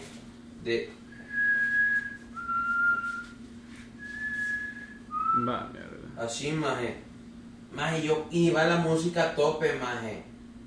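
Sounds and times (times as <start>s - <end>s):
steady low hum: 0.0s - 10.6s
speech: 0.6s - 1.0s, 5.4s - 7.1s, 7.7s - 10.3s
person whistling a slow eerie tune mimicking a distant whistle: 1.1s - 3.4s, 4.0s - 5.6s.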